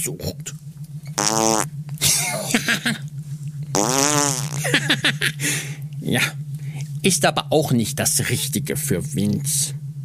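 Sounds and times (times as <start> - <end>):
speech: 0.0 - 0.6, 1.2 - 2.9, 7.0 - 9.8
low steady hum: 0.0 - 10.0
loud buzzy whoopee cushion farts: 1.2 - 1.7, 3.7 - 4.7
laughter: 2.0 - 3.0, 4.6 - 5.7.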